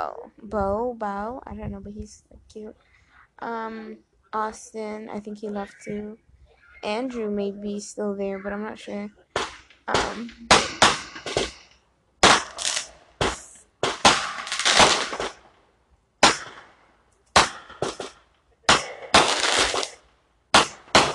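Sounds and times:
speech: 0.0 - 6.2, 6.8 - 9.2, 9.9 - 10.8
fireworks exploding outside: 9.2 - 15.5, 17.4 - 20.0.

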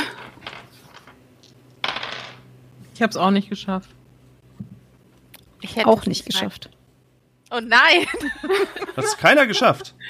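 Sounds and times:
dice rolling across a tabletop: 0.2 - 2.4
speech: 3.0 - 4.0, 5.8 - 6.8, 7.5 - 10.0
laughter: 8.0 - 10.0.

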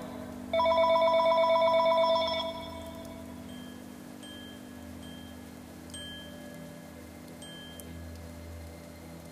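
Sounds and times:
faint tonal blips: 0.0 - 9.2
steady hum: 0.0 - 9.2
telephone ringing for an incoming call: 0.6 - 2.9.

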